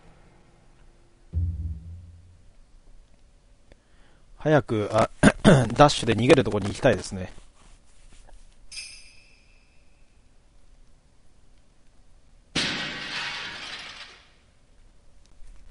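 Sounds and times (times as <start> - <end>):
speech: 4.4 - 7.4
brief high metallic clink: 8.7 - 10.0
fake head falling and shattering: 12.6 - 14.4.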